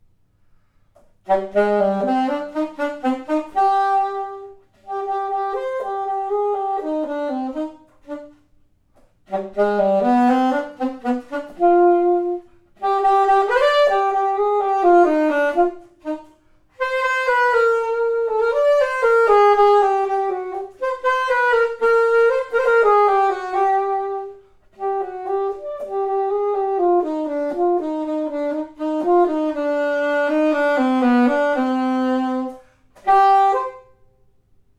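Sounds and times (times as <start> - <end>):
alto saxophone: 0.5 - 34.4.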